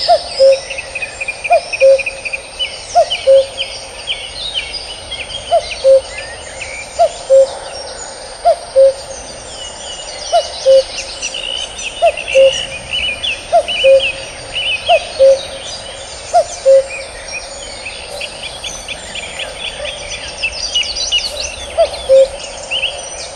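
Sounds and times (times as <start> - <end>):
cuckoo giving its low two-note cu-coo: 0.0 - 3.7, 5.5 - 6.3, 6.9 - 7.6, 8.4 - 9.1, 10.3 - 23.3
small birds chirping and twittering in the background: 0.0 - 23.3.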